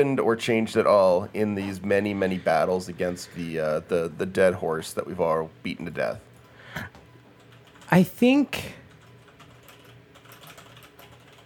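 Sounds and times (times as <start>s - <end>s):
speech: 0.0s - 7.0s, 7.9s - 8.8s
typing on a computer keyboard: 7.4s - 7.9s, 8.9s - 11.4s.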